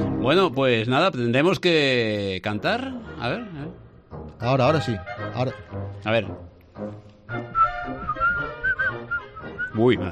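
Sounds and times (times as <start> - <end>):
speech: 0.2 - 3.8, 4.4 - 8.2, 9.8 - 10.1
person whistling a short halting tune: 7.4 - 9.8.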